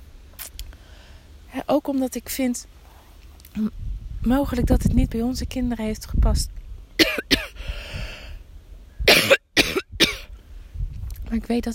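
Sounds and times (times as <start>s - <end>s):
speech: 1.6s - 2.8s, 3.6s - 6.6s, 11.3s - 11.7s
person coughing: 7.0s - 7.6s, 9.1s - 10.3s.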